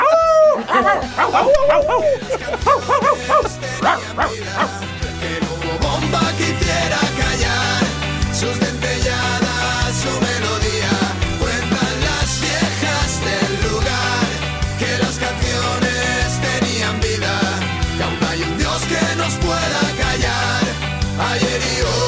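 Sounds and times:
person imitating a barking dog: 0:00.0 - 0:04.9
music: 0:00.0 - 0:22.0
laughter: 0:00.5 - 0:06.4.

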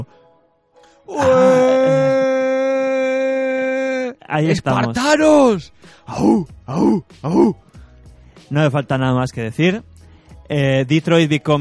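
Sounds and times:
speech: 0:01.1 - 0:01.7, 0:04.3 - 0:07.6, 0:08.5 - 0:09.9, 0:10.5 - 0:11.6
people shouting excitedly at a video game announcement: 0:01.1 - 0:05.2.

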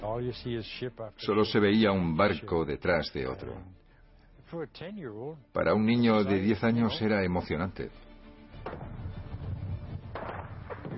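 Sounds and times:
speech: 0:00.2 - 0:03.8, 0:04.5 - 0:09.0
gunfire with sharp reports: 0:08.6 - 0:09.2, 0:10.0 - 0:10.9.

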